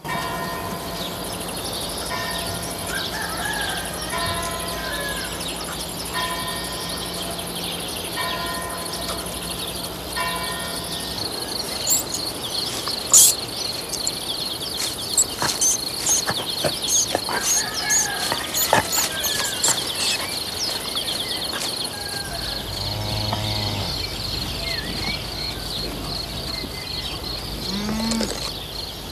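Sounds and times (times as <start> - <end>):
summer daytime countryside ambience: 0.0 - 29.1.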